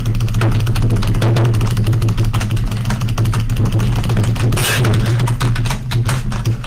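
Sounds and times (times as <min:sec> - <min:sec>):
loud keyboard spamming: 0:00.0 - 0:06.6.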